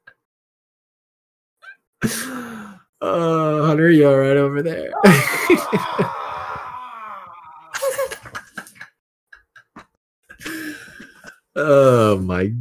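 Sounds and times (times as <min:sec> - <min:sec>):
speech: 0:02.0 - 0:06.2, 0:11.6 - 0:12.6
person screaming across a room: 0:04.9 - 0:07.9
laughter: 0:05.0 - 0:11.4.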